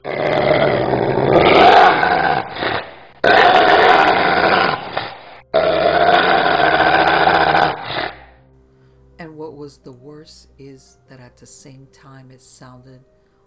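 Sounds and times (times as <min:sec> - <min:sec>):
snarling inhuman howls: 0:00.0 - 0:08.3
speech: 0:12.4 - 0:13.2.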